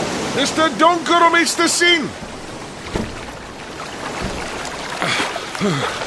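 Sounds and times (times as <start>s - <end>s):
steady wash of wind and water: 0.0s - 6.0s
speech: 0.4s - 2.4s, 5.6s - 6.0s
fist striking the hull of an overturned boat: 2.1s - 6.0s.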